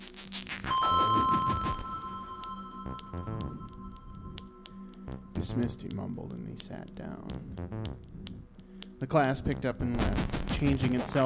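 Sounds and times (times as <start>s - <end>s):
school bell ringing: 0.7s - 4.4s
speech: 5.4s - 8.3s, 9.0s - 11.2s.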